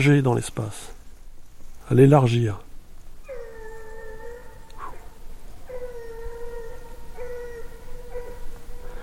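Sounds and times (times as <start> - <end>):
speech: 0.0 - 1.0, 1.9 - 2.7
hiss: 0.0 - 9.0
dog howling: 3.2 - 9.0.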